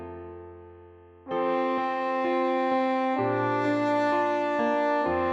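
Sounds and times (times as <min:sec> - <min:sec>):
F horn playing: 0:01.3 - 0:05.3.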